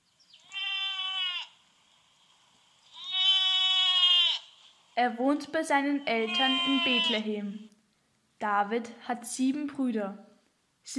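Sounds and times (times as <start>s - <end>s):
sheep bleating: 0.4s - 1.6s, 2.9s - 4.5s, 5.9s - 7.6s
speech: 5.0s - 7.7s, 8.4s - 10.9s.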